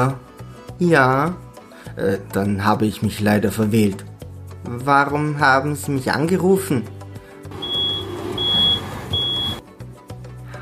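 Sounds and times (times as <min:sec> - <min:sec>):
speech: 0:00.0 - 0:00.2, 0:00.8 - 0:01.4, 0:02.0 - 0:07.0
reversing truck engine rumble: 0:07.5 - 0:09.6
truck reversing warning beeps: 0:07.5 - 0:09.6.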